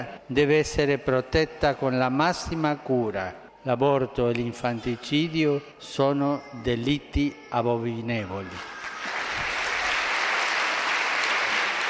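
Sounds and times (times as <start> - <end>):
speech: 0.0 - 8.8
loud applause from a large audience: 8.6 - 11.8.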